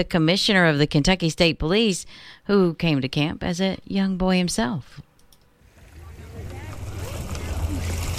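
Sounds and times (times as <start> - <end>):
speech: 0.0 - 5.1
lake water lapping against the shore of an island: 5.6 - 8.1.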